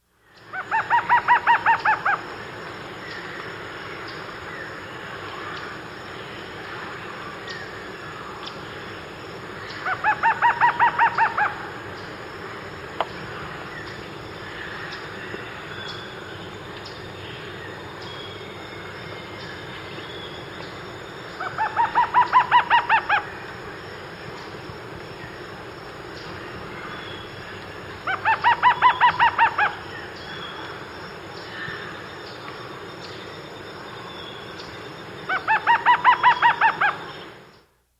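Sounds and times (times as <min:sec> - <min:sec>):
Lattice-tailed trogon calling in South America: 0:00.4 - 0:02.2, 0:09.6 - 0:11.8, 0:21.2 - 0:23.4, 0:26.3 - 0:30.8, 0:35.2 - 0:37.2.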